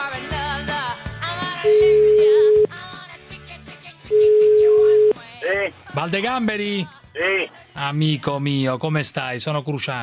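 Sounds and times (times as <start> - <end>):
ringback tone on an outgoing phone call: 1.6 - 2.7, 4.1 - 5.2
speech: 6.0 - 10.0.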